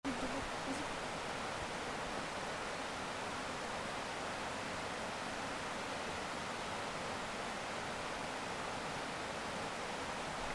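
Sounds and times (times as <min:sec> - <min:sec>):
stream flowing: 0:00.0 - 0:10.5.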